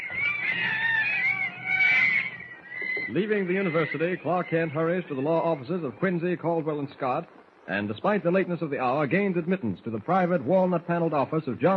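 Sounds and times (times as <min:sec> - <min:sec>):
monkeys chattering with shrill squeals and cries: 0:00.0 - 0:06.2
low hum: 0:00.0 - 0:11.7
speech: 0:03.1 - 0:11.7.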